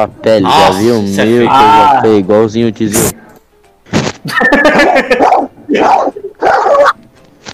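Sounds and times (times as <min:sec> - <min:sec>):
speech: 0:00.0 - 0:03.3, 0:04.2 - 0:07.0
laughter: 0:04.2 - 0:06.4
person imitating a hoarse dog bark: 0:05.1 - 0:07.0.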